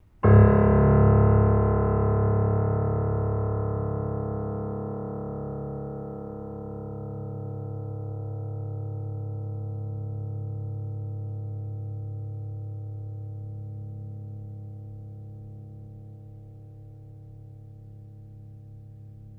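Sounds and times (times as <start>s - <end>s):
piano note: 0.0s - 7.7s.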